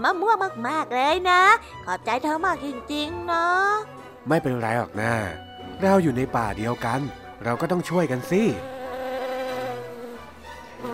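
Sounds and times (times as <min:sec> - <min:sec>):
speech: 0:00.0 - 0:08.7
bees buzzing around a mango tree where they are nesting: 0:08.4 - 0:10.9.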